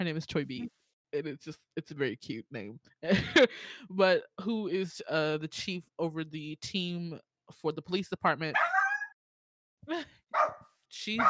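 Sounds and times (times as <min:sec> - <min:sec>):
speech: 0:00.0 - 0:08.8, 0:09.8 - 0:11.2
dog barking: 0:08.6 - 0:09.2, 0:10.4 - 0:11.2.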